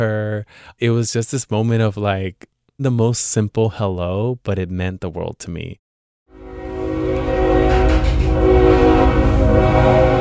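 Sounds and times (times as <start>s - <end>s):
speech: 0.0s - 5.8s
freight train rumbling: 6.4s - 10.1s.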